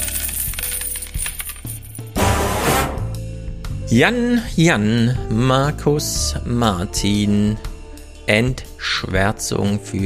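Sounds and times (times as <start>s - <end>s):
coin dropping and bouncing with metallic ringing: 0.0s - 2.2s
speech: 3.9s - 7.7s, 8.3s - 10.0s.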